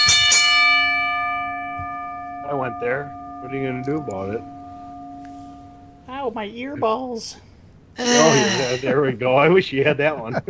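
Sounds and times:
bell struck with bright metallic clang: 0.0 - 7.0, 8.0 - 9.1
speech: 2.7 - 4.6, 6.2 - 10.4
laughter: 8.0 - 10.4.

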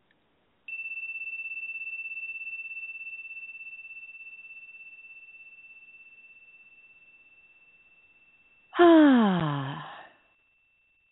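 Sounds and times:
long pure ringing tone during a guided meditation: 0.7 - 8.7
loud voiced sigh exhale during a guided meditation: 8.8 - 10.1.

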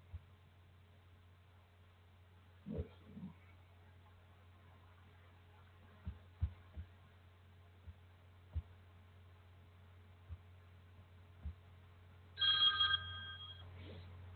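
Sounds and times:
steady low hum: 0.0 - 14.3
telephone ringback tone on outgoing call to a call-in show line: 12.4 - 13.7.

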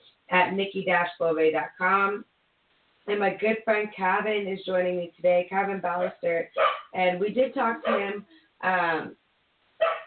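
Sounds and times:
speech: 0.5 - 2.3, 3.1 - 9.2
dog barking: 6.0 - 7.0, 7.8 - 8.2, 9.8 - 10.0.

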